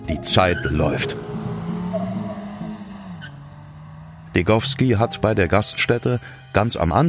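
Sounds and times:
car tires screeching through a 180-degree turn: 0.0s - 5.1s
car engine droning: 0.0s - 6.0s
speech: 0.1s - 2.1s, 4.4s - 7.0s.

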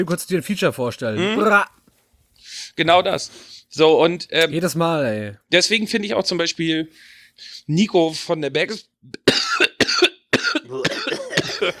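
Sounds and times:
speech: 0.0s - 1.8s, 2.4s - 9.2s, 11.6s - 11.7s
person coughing: 9.2s - 11.7s.

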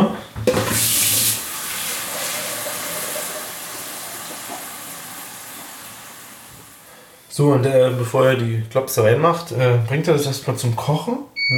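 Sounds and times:
water pouring into a large wide cooking pot: 0.5s - 7.0s
speech: 7.4s - 11.5s.

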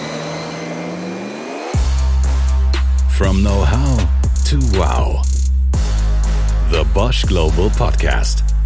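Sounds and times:
car engine cranking, starting and revving: 0.0s - 6.7s
speech: 3.2s - 5.3s, 6.7s - 8.5s.

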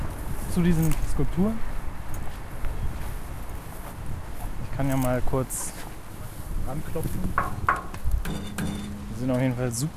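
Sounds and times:
footsteps along a trampled path through long unmown grass: 0.0s - 7.3s
speech: 0.6s - 1.7s, 4.8s - 5.8s, 6.7s - 9.9s.

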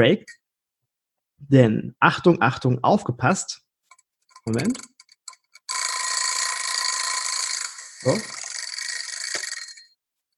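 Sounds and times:
speech: 0.0s - 0.4s, 1.4s - 3.6s, 4.4s - 4.9s, 8.0s - 8.4s
egg timer ringing: 3.9s - 10.0s.

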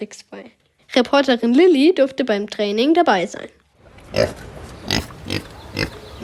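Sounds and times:
speech: 0.0s - 4.5s
Kunekune pig grunting: 4.1s - 6.2s.

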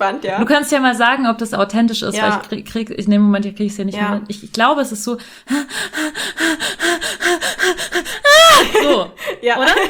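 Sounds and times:
speech: 0.0s - 7.8s, 8.6s - 9.8s
person imitating rapid gasping breaths: 5.2s - 9.4s.

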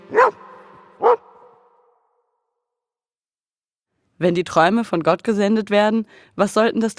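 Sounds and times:
dog barks: 0.1s - 2.0s
speech: 4.2s - 6.9s.

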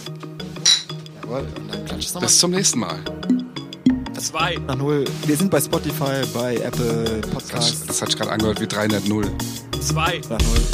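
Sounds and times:
glasses clinking together in a toast: 0.7s - 1.0s
speech: 1.3s - 3.5s, 4.2s - 10.7s
low musical tone: 3.3s - 4.4s.

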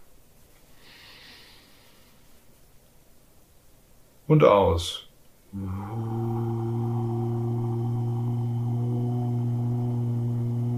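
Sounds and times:
faint hiss: 0.0s - 10.7s
quick airy breath drawn in: 0.8s - 2.2s
speech: 4.3s - 6.3s.

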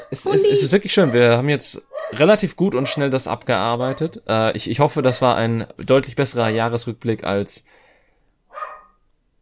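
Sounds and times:
speech: 0.1s - 7.8s
dog barking: 1.0s - 1.3s, 1.9s - 2.2s, 2.8s - 3.1s, 5.1s - 5.3s, 8.5s - 9.0s.

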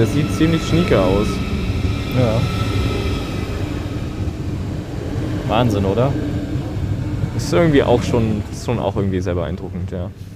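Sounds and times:
speech: 0.0s - 2.6s, 5.5s - 6.4s, 7.4s - 10.3s
newer ICE high-speed train passing through a station: 0.0s - 10.3s.

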